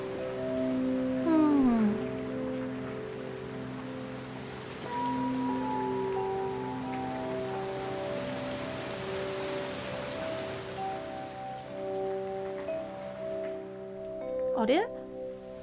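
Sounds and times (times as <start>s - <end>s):
rain falling: 0.0s - 15.6s
speech: 14.6s - 15.0s.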